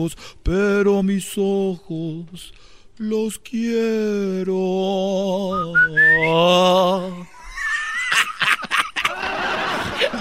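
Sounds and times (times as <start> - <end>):
speech: 0.0 - 7.4
person whistling a short wavering tune with an upward slide: 5.5 - 6.4
breathy snickering laughter: 7.4 - 10.1.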